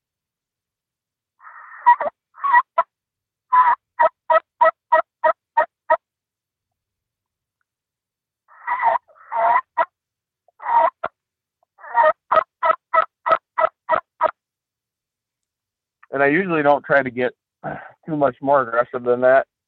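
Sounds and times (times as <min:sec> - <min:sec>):
turkey yelps made on a turkey call: 0:01.4 - 0:02.9, 0:03.5 - 0:06.0, 0:08.5 - 0:09.9, 0:10.6 - 0:11.1, 0:11.8 - 0:14.3
speech: 0:16.2 - 0:17.4, 0:18.1 - 0:19.5.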